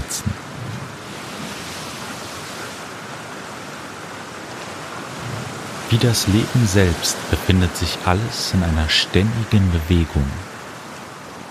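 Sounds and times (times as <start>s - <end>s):
ocean waves washing in surf: 0.0s - 11.4s
speech: 5.9s - 10.5s.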